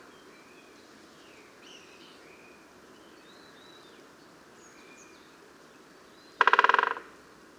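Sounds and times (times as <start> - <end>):
great spotted woodpecker Dendrocopos major drumming: 6.4 - 7.1.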